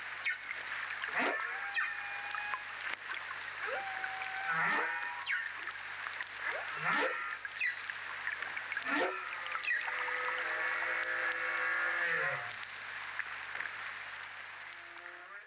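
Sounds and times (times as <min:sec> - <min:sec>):
constant high hiss: 0:00.0 - 0:15.4
whale song with tonal moans and upsweeps: 0:00.2 - 0:02.9, 0:03.6 - 0:05.7, 0:06.5 - 0:12.6.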